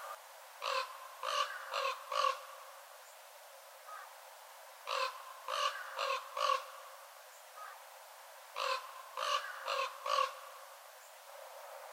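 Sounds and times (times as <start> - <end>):
Northern raven cawing: 0.6 - 2.6, 4.8 - 6.9, 8.6 - 10.6.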